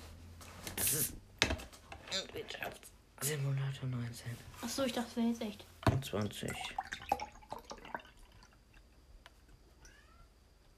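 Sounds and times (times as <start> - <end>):
speech: 0.9 - 1.2, 2.1 - 6.8
cat meowing: 9.8 - 10.3.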